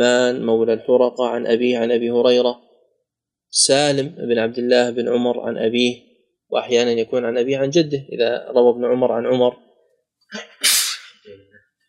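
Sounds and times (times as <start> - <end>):
speech: 0.0 - 2.7, 3.5 - 9.6, 10.3 - 10.5
person sneezing: 10.3 - 11.2.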